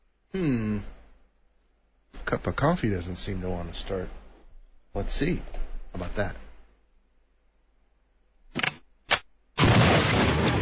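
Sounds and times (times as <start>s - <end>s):
speech: 2.3s - 4.2s, 4.9s - 6.4s
gunshot sound effects aimed at an old coffee pot: 9.6s - 10.5s.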